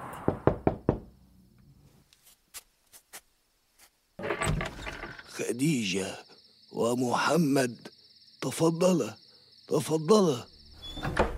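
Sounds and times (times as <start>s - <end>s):
knocking on a wooden door: 0.3s - 1.1s
speech: 5.4s - 11.2s.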